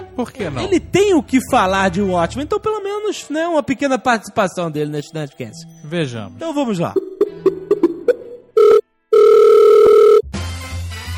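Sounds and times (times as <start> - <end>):
speech: 0.2 - 7.0
telephone ring tone: 8.5 - 10.2
short telephone keypad beeps: 8.6 - 10.2
telephone line click: 8.6 - 10.2.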